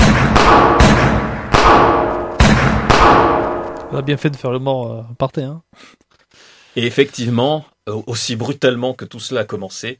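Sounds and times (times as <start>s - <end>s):
gunshots with long tail: 0.0s - 4.2s
speech: 4.0s - 6.0s, 6.8s - 9.9s.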